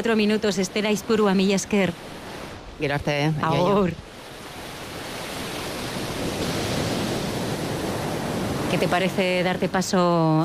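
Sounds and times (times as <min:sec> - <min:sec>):
speech: 0:00.0 - 0:02.2, 0:02.8 - 0:04.1, 0:08.7 - 0:10.4
sea waves washing onto a beach: 0:00.0 - 0:10.4.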